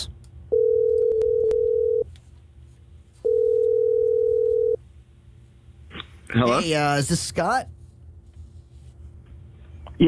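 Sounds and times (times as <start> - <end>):
outgoing phone call electronic ringback tone: 0.5 - 2.0, 3.2 - 4.8
speech: 6.3 - 7.8.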